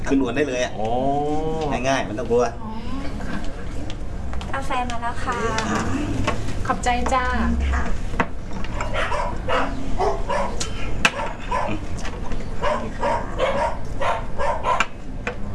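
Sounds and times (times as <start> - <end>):
low hum: 0.0 - 15.5
speech: 0.1 - 2.9, 4.6 - 8.1
dog barking and yelping: 8.7 - 11.8, 12.6 - 15.0.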